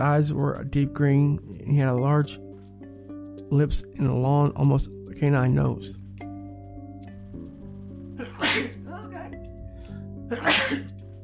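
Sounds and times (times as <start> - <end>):
speech: 0.0 - 2.5, 3.5 - 6.0
person sneezing: 8.2 - 9.3, 10.3 - 11.0.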